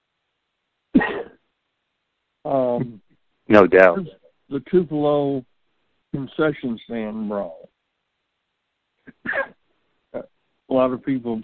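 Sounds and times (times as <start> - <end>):
cough: 1.0 - 1.4, 9.0 - 9.6
speech: 2.5 - 5.5, 6.1 - 7.7, 9.2 - 11.4.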